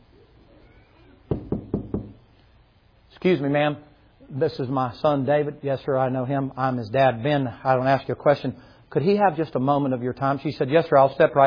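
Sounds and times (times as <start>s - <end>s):
polite knocking on a door: 1.3s - 2.2s
speech: 3.2s - 11.4s.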